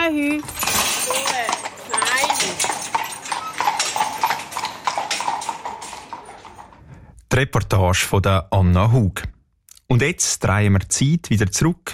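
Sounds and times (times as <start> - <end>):
horses' hooves clip-clopping pulling a well-filled carriage: 0.0 - 7.0
speech: 7.4 - 11.9.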